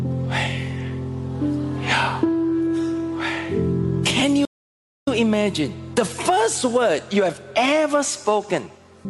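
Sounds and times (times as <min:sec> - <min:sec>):
person inhaling and exhaling deeply: 0:00.2 - 0:03.8
speech: 0:05.2 - 0:09.0.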